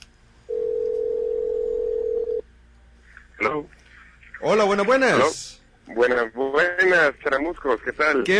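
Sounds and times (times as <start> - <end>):
Skype call dialing tone: 0.5 - 2.4
speech: 3.5 - 3.8, 4.4 - 8.3.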